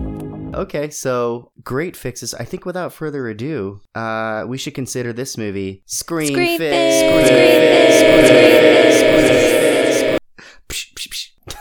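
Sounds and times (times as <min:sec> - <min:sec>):
speech: 0:00.5 - 0:09.5
loud sustained burst of tonal sound: 0:06.3 - 0:10.2.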